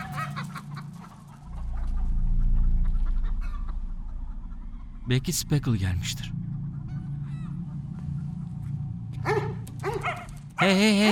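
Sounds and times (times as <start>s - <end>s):
low rumbling background: 0.5s - 10.6s
speech: 5.1s - 6.4s, 10.6s - 11.1s
dog barking: 9.2s - 10.4s.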